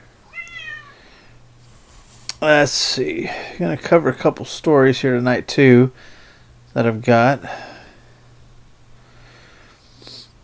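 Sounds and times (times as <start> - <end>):
low steady hum: 0.0 - 10.4
cat meowing behind a closed door: 0.3 - 1.0
speech: 2.4 - 6.2, 6.8 - 7.7.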